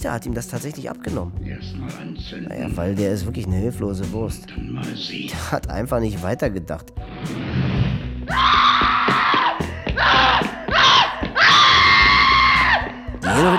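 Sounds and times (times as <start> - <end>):
speech: 0.0 - 7.4, 13.4 - 13.5
woman screaming loudly and shrilly: 8.3 - 13.5.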